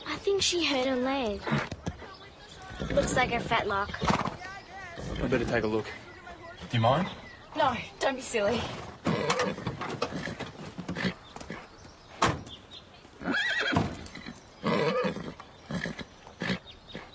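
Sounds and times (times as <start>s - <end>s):
speech: 0.2s - 1.8s, 2.9s - 4.2s, 5.1s - 6.1s, 6.7s - 9.6s
horse snorting: 1.3s - 6.0s, 8.4s - 11.8s, 13.2s - 17.1s
horse whinnying and neighing: 2.6s - 5.7s, 8.6s - 11.6s, 13.2s - 17.1s.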